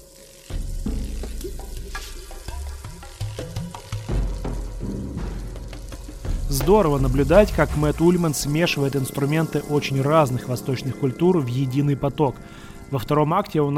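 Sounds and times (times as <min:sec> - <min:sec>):
low sustained musical tones in an ambient music track: 0:00.0 - 0:13.7
rain stick cascade of tiny pellets: 0:00.1 - 0:12.2
speech: 0:06.5 - 0:13.7.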